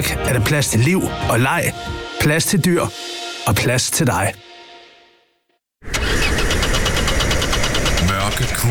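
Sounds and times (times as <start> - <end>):
speech: 0.0 - 4.5, 8.4 - 8.6
car engine cranking and struggling to start: 5.8 - 8.6.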